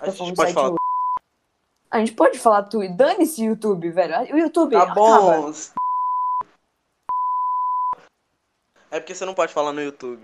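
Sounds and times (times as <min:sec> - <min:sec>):
speech: 0:00.0 - 0:00.8, 0:01.9 - 0:05.8, 0:08.9 - 0:10.2
censorship bleeps: 0:00.4 - 0:01.2, 0:05.8 - 0:06.5, 0:07.1 - 0:08.1.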